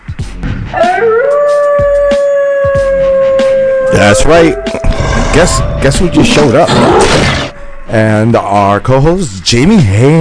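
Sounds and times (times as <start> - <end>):
wolf howling: 0.8 - 8.0
speech: 4.0 - 10.1.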